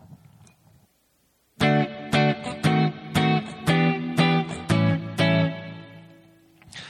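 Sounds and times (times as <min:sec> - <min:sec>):
guitar strumming a short chord progression: 0:01.6 - 0:06.6.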